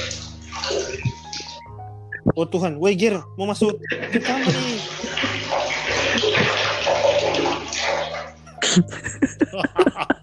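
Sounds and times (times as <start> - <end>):
water splashing: 0.0 - 1.8, 3.8 - 8.6
water running in a bathroom: 0.0 - 10.2
speech: 2.4 - 5.3, 8.8 - 10.0
laughter: 3.8 - 5.4, 6.0 - 6.6, 8.6 - 10.2.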